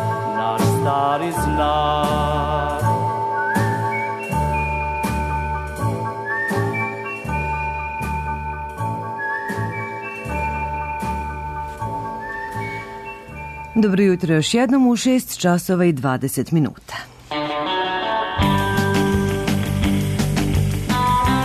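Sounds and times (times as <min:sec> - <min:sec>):
musical accompaniment with regular beats: 0:00.0 - 0:13.8, 0:17.3 - 0:21.4
speech: 0:00.9 - 0:02.5, 0:13.8 - 0:17.1
person whistling a tune: 0:01.8 - 0:13.8.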